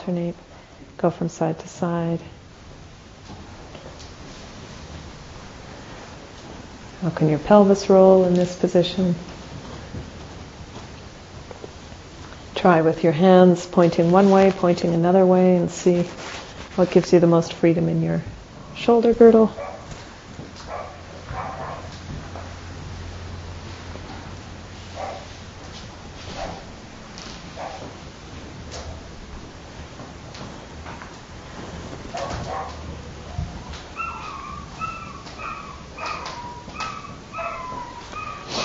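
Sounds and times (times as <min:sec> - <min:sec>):
speech: 0:00.0 - 0:02.4, 0:07.0 - 0:09.4, 0:12.6 - 0:19.7
steady hum: 0:00.0 - 0:38.6
small dog barking and whimpering next door: 0:20.7 - 0:21.9, 0:32.2 - 0:38.6.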